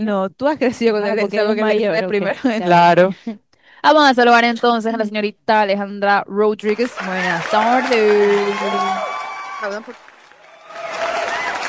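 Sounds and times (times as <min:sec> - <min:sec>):
speech: 0:00.0 - 0:09.0, 0:09.6 - 0:10.1
talk show audience applauding a guest: 0:06.7 - 0:11.6.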